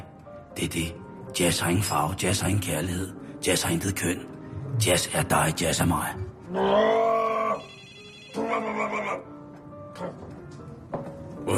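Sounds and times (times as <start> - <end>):
speech: 0.6 - 7.1, 10.0 - 10.3
telephone ringing: 7.6 - 8.5.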